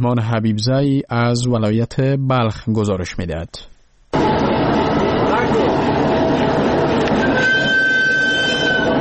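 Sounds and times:
speech: 0.0s - 4.3s, 5.5s - 6.5s
freight train with wagons rumbling and clattering on rails: 4.2s - 9.0s
thin metallic squeal of train wheels: 7.1s - 9.0s.

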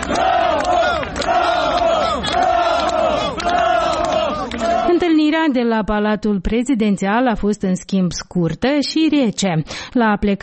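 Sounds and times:
large crowd of supporters shouting and cheering greetings: 0.0s - 5.1s
speech: 5.5s - 10.4s.

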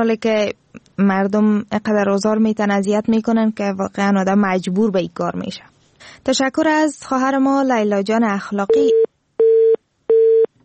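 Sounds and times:
speech: 0.0s - 9.1s
telephone disconnected call tone beeps: 8.7s - 10.5s.

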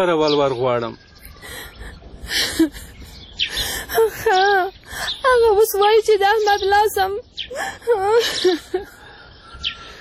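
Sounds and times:
speech: 0.0s - 2.9s, 3.9s - 9.0s
woman crying: 1.3s - 6.0s, 7.5s - 9.2s.

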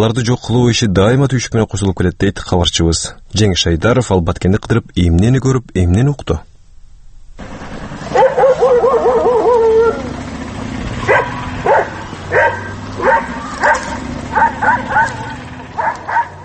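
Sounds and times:
speech: 0.0s - 6.5s
stray dogs barking on a street in the town of Batken: 8.0s - 16.4s.

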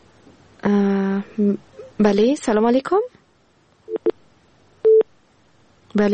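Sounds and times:
speech: 1.4s - 3.2s, 6.0s - 6.1s
busy tone beeps on a disconnected phone call: 3.9s - 4.1s, 4.8s - 5.1s.

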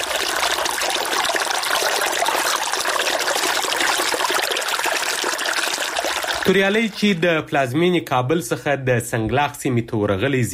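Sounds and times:
small river flowing: 0.0s - 6.8s
speech: 6.4s - 10.5s.

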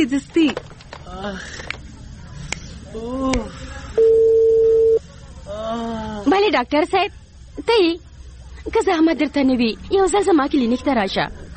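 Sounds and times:
speech: 0.0s - 1.8s, 2.9s - 4.4s, 5.5s - 11.4s
telephone ringing tone while placing a call: 4.0s - 5.0s.

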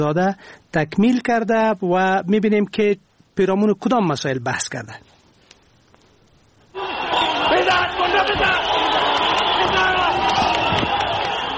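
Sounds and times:
speech: 0.0s - 5.1s
large crowd of spectators cheering at a sports ground in Kabul Afghanistan: 6.7s - 11.5s.

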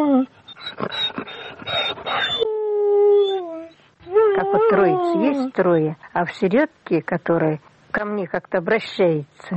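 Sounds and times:
small dog whining and whimpering: 0.1s - 2.5s, 3.1s - 5.5s
speech: 4.7s - 9.5s.

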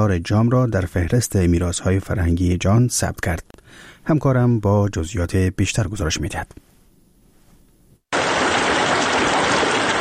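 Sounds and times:
speech: 0.0s - 6.7s
river water rushing at the confluence of the Harirud and Jam rivers in Afghanistan: 8.2s - 9.9s.

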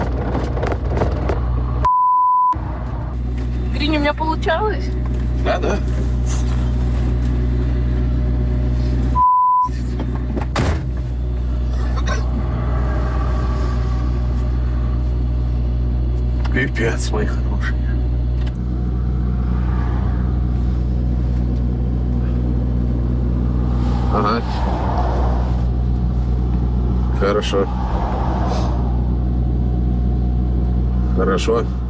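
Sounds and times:
car engine starting and idling: 0.0s - 1.9s, 2.5s - 31.8s
speech: 4.0s - 6.0s, 16.6s - 17.8s, 24.1s - 24.7s, 27.2s - 27.8s, 31.2s - 31.8s.

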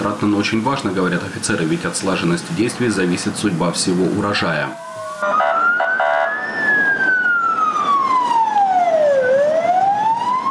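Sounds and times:
speech: 0.0s - 5.5s
steady traffic rumble: 0.0s - 10.4s
fire engine siren wailing during a firefighting drill in Liman: 4.4s - 10.4s.

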